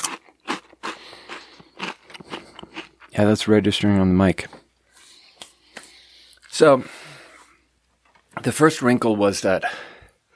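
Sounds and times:
crunchy cheese snack being bitten and chewed: 0:00.0 - 0:03.1
speech: 0:03.2 - 0:04.6, 0:06.6 - 0:07.0, 0:08.4 - 0:09.9.

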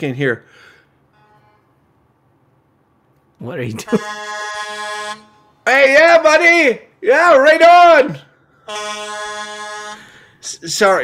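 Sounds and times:
speech: 0:00.0 - 0:00.7, 0:03.4 - 0:09.6, 0:10.4 - 0:11.0
vehicle horn honking outside: 0:01.1 - 0:02.0, 0:03.8 - 0:05.7, 0:08.6 - 0:10.3.

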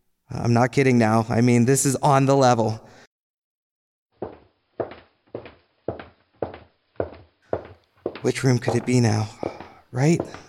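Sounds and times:
speech: 0:00.4 - 0:03.0, 0:08.2 - 0:10.4
footsteps climbing a staircase: 0:04.2 - 0:10.4.

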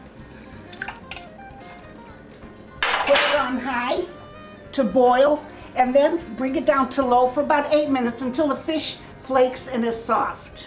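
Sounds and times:
water poured into a pot: 0:00.6 - 0:02.3
small splashes and drips: 0:00.6 - 0:02.4
speech: 0:03.3 - 0:04.2, 0:04.8 - 0:10.6.

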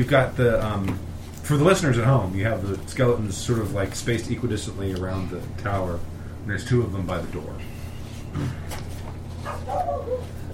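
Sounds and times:
speech: 0:00.0 - 0:07.8, 0:08.4 - 0:08.7
low steady hum: 0:00.0 - 0:10.5
dog yipping and whimpering: 0:09.4 - 0:10.5.

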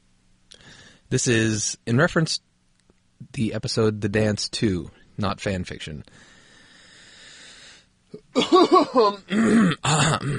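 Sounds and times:
speech: 0:01.1 - 0:02.5, 0:03.2 - 0:06.3, 0:08.1 - 0:10.3
exaggerated voiced throat clearing: 0:09.3 - 0:10.3.

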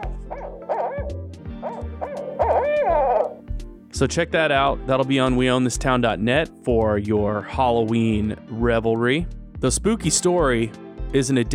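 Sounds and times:
owl hooting: 0:00.0 - 0:03.4
speech: 0:04.0 - 0:11.5.

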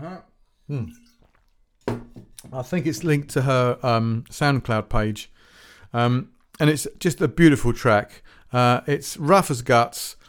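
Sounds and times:
speech: 0:00.0 - 0:01.1, 0:02.5 - 0:10.2
faint liquid sounds: 0:00.4 - 0:02.6
throaty gulping: 0:00.7 - 0:01.7
person sipping and swallowing a drink: 0:00.7 - 0:02.5.

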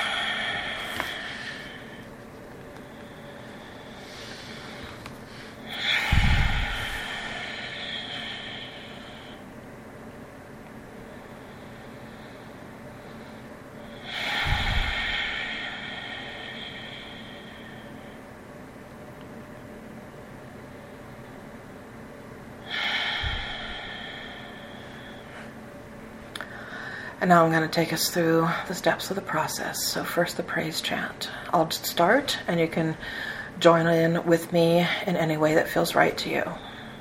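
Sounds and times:
long slow deep breaths during a guided meditation: 0:00.0 - 0:09.7, 0:11.0 - 0:18.4, 0:22.6 - 0:25.8, 0:26.4 - 0:27.2, 0:33.0 - 0:33.6, 0:36.6 - 0:37.0
speech: 0:27.2 - 0:36.7.

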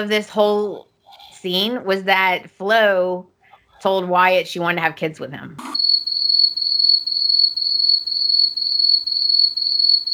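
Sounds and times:
speech: 0:00.0 - 0:05.7
crickets chirping: 0:05.8 - 0:10.1.

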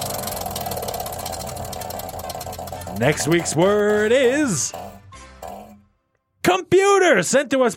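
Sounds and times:
prize wheel of words spinning with ratcheting clatter: 0:00.0 - 0:05.8
speech: 0:03.0 - 0:04.8, 0:06.7 - 0:07.7.

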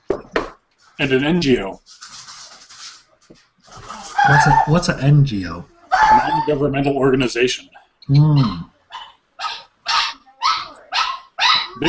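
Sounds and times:
speech: 0:01.0 - 0:02.0, 0:04.3 - 0:08.7
dog barking: 0:04.2 - 0:04.8, 0:05.9 - 0:06.6, 0:08.4 - 0:11.8.

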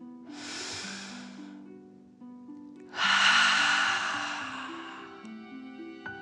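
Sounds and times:
soft steady music: 0:00.0 - 0:06.2
deep airy breath drawn in through the nose: 0:00.3 - 0:01.6, 0:03.0 - 0:05.3.

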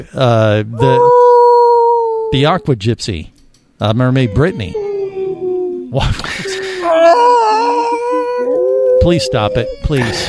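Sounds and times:
speech: 0:00.0 - 0:01.2, 0:02.3 - 0:04.8, 0:05.9 - 0:10.2
person imitating whale song with a wavering vocal moan: 0:00.7 - 0:02.6, 0:04.2 - 0:06.0, 0:06.8 - 0:10.2.

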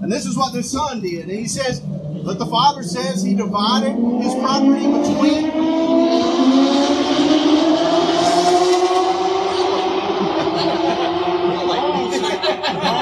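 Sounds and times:
speech: 0:00.0 - 0:06.9
motorcycle engine roaring past at speed on an interstate highway: 0:01.8 - 0:12.1
laughter: 0:09.9 - 0:13.0.

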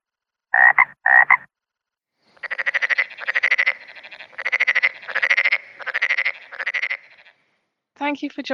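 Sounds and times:
frogs croaking in rattling trilling calls: 0:00.5 - 0:01.5, 0:02.4 - 0:07.4
speech: 0:08.1 - 0:08.5.

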